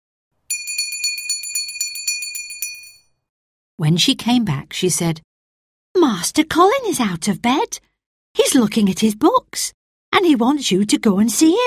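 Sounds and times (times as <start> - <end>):
small bell ringing rapidly: 0.5 - 3.2
speech: 3.8 - 5.3, 6.0 - 11.6.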